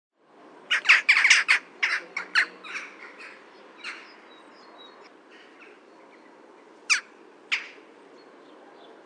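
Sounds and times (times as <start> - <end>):
jackdaw calls: 0.7 - 4.2, 6.9 - 7.9.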